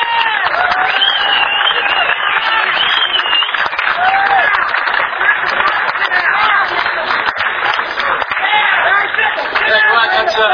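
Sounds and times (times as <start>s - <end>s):
cheers and whistles: 0.0s - 4.8s
audience applause: 0.0s - 10.4s.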